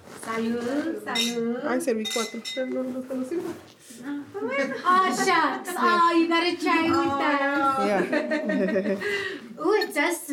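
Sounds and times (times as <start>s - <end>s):
speech: 0.4s - 10.3s
wine glasses holding young Lambrusca wine clinking in a toast: 1.2s - 2.9s
laughter: 4.4s - 6.2s, 7.5s - 9.4s.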